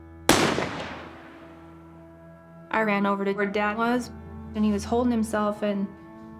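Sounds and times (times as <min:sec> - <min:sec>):
single loud gunshot with tail: 0:00.3 - 0:01.6
speech: 0:02.8 - 0:06.0.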